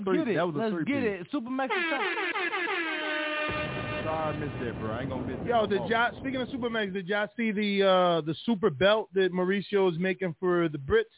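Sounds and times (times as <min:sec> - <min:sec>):
speech: 0:00.0 - 0:02.9, 0:03.5 - 0:11.1
air horn sound effect blaring: 0:01.7 - 0:05.7.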